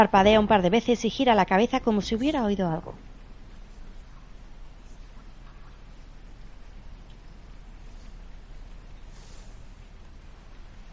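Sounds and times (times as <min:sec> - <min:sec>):
speech: 0:00.0 - 0:03.1
steady rain falling at night: 0:02.9 - 0:10.9.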